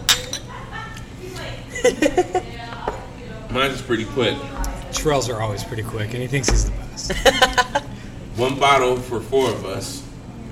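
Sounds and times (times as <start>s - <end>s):
pint glasses of beer clinking in a toast: 0.0s - 0.5s
people chuckling: 0.5s - 2.6s, 7.0s - 8.2s
speech: 3.6s - 7.8s, 8.4s - 10.0s.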